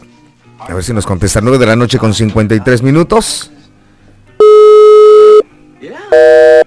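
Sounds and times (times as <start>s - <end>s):
speech: 0.6s - 3.6s
telephone busy signal after dialing: 4.4s - 5.4s, 6.1s - 6.6s.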